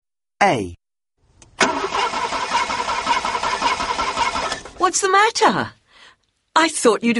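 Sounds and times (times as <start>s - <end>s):
speech: 0.4s - 0.8s, 4.8s - 5.8s, 6.6s - 7.1s
car engine cranking and failing to start: 1.4s - 4.8s.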